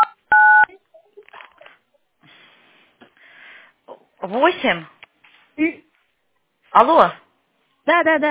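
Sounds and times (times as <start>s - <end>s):
telephone keypad dual-tone beep while dialing a number: 0.0s - 0.7s
speech: 4.3s - 5.0s, 5.6s - 5.9s, 6.8s - 7.2s, 7.9s - 8.3s.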